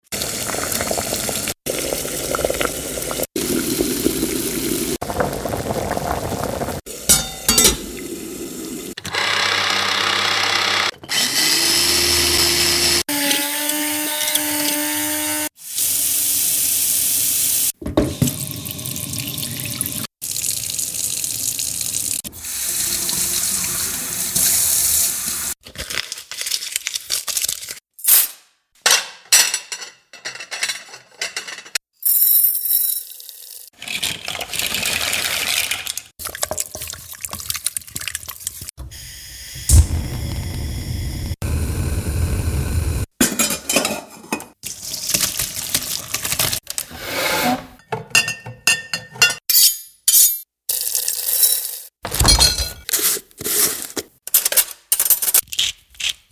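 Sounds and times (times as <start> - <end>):
cooking: 0.0 - 56.2.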